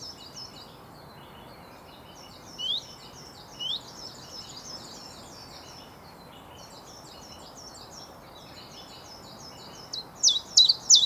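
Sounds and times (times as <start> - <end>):
male Common Chiffchaff singing: 10.0 - 11.0.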